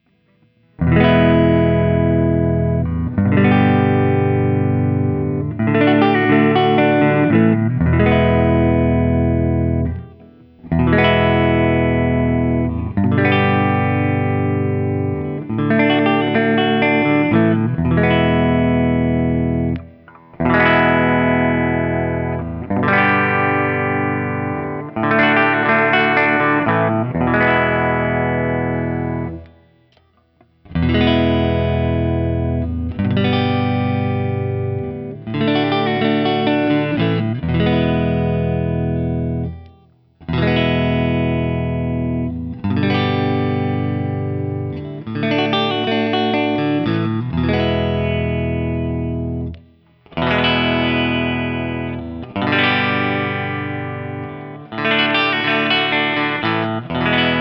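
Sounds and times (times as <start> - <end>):
1999 Guild X170T electric guitar playing open chords: 0.0 - 57.4.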